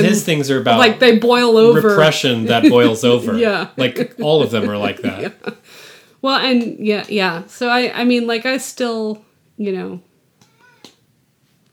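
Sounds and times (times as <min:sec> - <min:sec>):
speech: 0:00.0 - 0:10.1
laughter: 0:01.6 - 0:05.6
cat meowing: 0:10.4 - 0:11.0.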